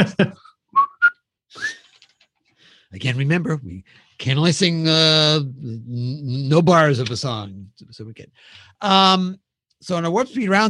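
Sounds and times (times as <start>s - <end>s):
speech: 0.0s - 0.4s, 2.9s - 10.6s
person whistling: 0.7s - 1.9s.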